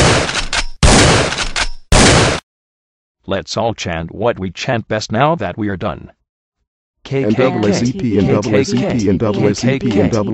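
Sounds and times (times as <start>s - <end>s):
gunfire bursts of rapid shots from guns: 0.0s - 2.4s
speech: 3.3s - 6.2s, 7.1s - 10.3s
laughter: 7.1s - 10.3s.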